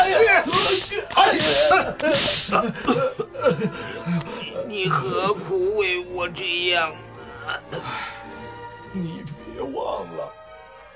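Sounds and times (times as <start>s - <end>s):
whip lashes of an Egyptian taskmaster striking a Hebrew laborer: 0.0s - 2.7s
laughter: 0.0s - 5.5s
speech: 4.8s - 8.2s.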